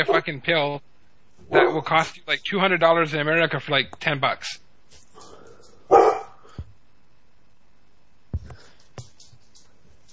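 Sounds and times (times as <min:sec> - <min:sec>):
pet dog barking: 0:00.0 - 0:00.3, 0:01.5 - 0:01.9, 0:05.3 - 0:06.5
speech: 0:00.0 - 0:04.6.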